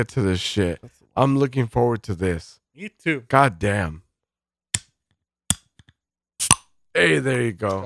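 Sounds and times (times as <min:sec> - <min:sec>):
speech: 0:00.0 - 0:04.0, 0:06.4 - 0:07.8
lighter being flicked with a metallic click and rasp: 0:06.4 - 0:06.7.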